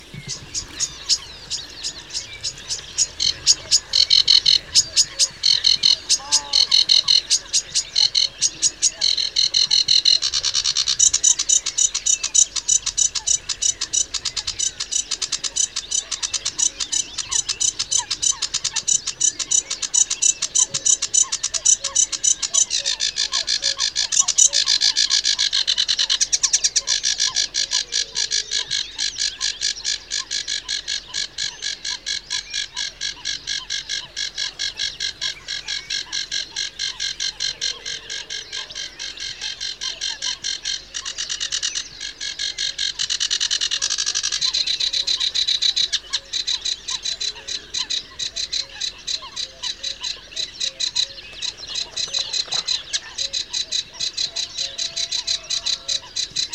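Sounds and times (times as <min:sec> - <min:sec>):
Acrocephalus schoenobaenus singing: 0:00.0 - 0:56.5.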